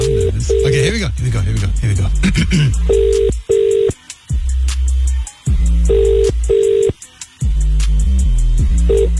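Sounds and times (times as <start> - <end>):
paired phone ringback tones: 0.0 - 0.8, 2.9 - 4.0, 5.9 - 7.0, 8.9 - 9.1
low continuous musical bed: 0.0 - 9.1
speech: 0.9 - 3.3.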